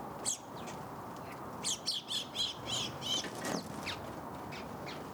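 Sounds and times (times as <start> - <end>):
house sparrow Passer domesticus chirping: 0.2 - 0.8, 1.6 - 5.0.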